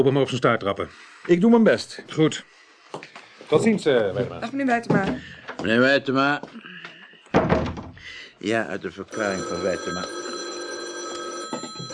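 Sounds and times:
speech: 0:00.0 - 0:06.7, 0:08.4 - 0:10.2
telephone bell ringing: 0:09.1 - 0:11.9.

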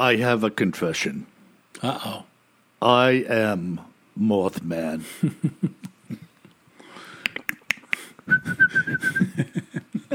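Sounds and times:
speech: 0:00.0 - 0:06.2
voice imitating a creature with rapid rhythmic clicks: 0:07.2 - 0:08.1
thin steady whistle: 0:07.7 - 0:09.4.

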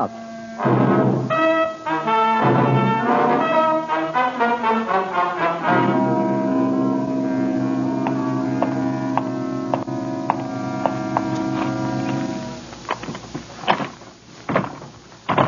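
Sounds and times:
speech: 0:00.0 - 0:00.8
steady droning hum: 0:00.0 - 0:15.4
stuck door being rattled: 0:13.0 - 0:15.4.

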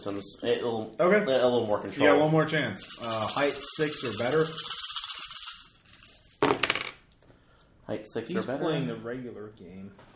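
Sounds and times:
speech: 0:00.0 - 0:04.8, 0:07.9 - 0:10.1
dice rattling in a cup: 0:01.7 - 0:06.9
dice clattering onto a hard surface: 0:02.9 - 0:07.0.

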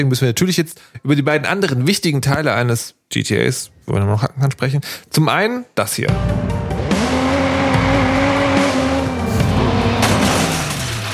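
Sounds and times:
speech: 0:00.0 - 0:06.6
video game car engine drone: 0:06.1 - 0:11.1
video game car tires squealing and skidding: 0:06.8 - 0:11.1.

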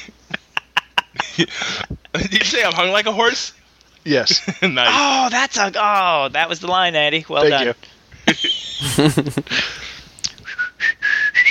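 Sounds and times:
laughter: 0:00.0 - 0:02.7, 0:04.3 - 0:05.3, 0:07.4 - 0:10.0
speech: 0:01.4 - 0:09.8
whistled jingle melody: 0:10.4 - 0:11.4.

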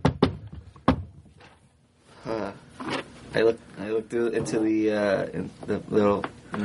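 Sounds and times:
solid knocks on an apartment door: 0:00.0 - 0:01.2
speech: 0:03.3 - 0:06.6.

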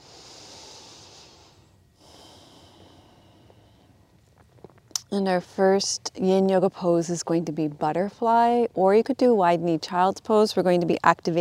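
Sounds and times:
slow deep breaths during a yin yoga session: 0:00.0 - 0:04.1
soft noise: 0:00.0 - 0:08.9
speech: 0:05.1 - 0:11.3.

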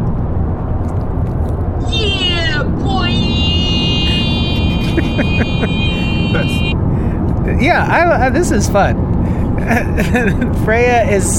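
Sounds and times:
road rumble inside a moving car: 0:00.0 - 0:11.3
thin constant high-pitched whine: 0:01.8 - 0:06.8
laughter: 0:03.6 - 0:06.7, 0:09.6 - 0:10.5
speech: 0:05.6 - 0:05.8, 0:07.6 - 0:11.3.

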